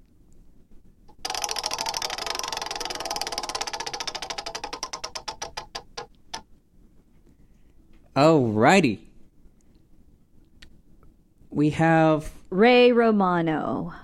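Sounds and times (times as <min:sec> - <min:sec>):
prize wheel spinning with rapid loud clicking ticks: 0:01.1 - 0:06.4
speech: 0:08.2 - 0:09.0, 0:11.6 - 0:14.0.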